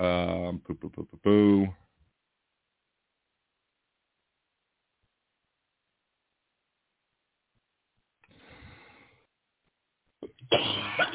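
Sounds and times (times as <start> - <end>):
speech: 0.2 - 1.8
person coughing: 10.2 - 11.1.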